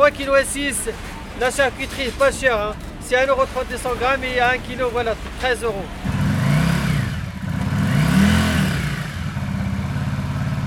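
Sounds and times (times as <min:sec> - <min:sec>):
speech: 0:00.0 - 0:06.0
motorcycle engine revving and idling: 0:05.9 - 0:10.6.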